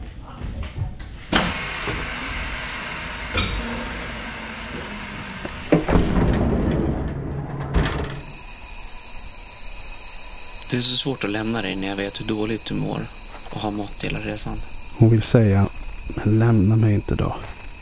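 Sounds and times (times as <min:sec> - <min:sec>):
train clunks and knocks: 0:00.0 - 0:08.4
train braking to a stop: 0:01.3 - 0:17.8
speech: 0:10.7 - 0:17.5.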